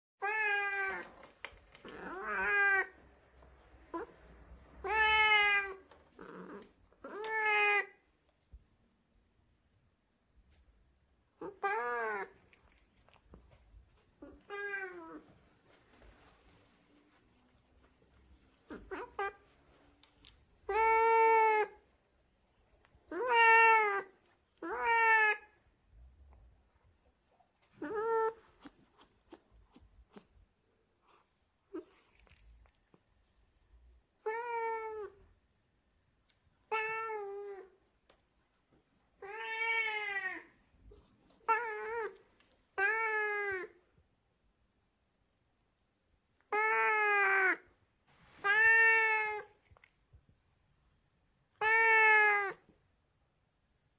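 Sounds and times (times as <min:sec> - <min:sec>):
Siamese cat meowing: 0:00.2 - 0:01.2, 0:01.8 - 0:03.0, 0:04.8 - 0:08.0, 0:11.4 - 0:12.8, 0:14.2 - 0:15.3, 0:18.7 - 0:19.4, 0:20.7 - 0:21.8, 0:23.1 - 0:25.6, 0:27.8 - 0:28.7, 0:34.2 - 0:35.3, 0:36.6 - 0:37.8, 0:39.2 - 0:40.6, 0:41.4 - 0:42.2, 0:42.8 - 0:43.8, 0:46.5 - 0:47.7, 0:48.4 - 0:49.6, 0:51.6 - 0:52.7.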